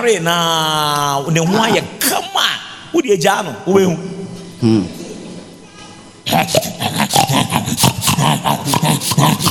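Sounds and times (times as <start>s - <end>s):
speech: 0.0s - 5.0s, 6.3s - 6.7s, 8.2s - 9.4s
voice imitating a pig grunting and snorting: 6.3s - 9.4s.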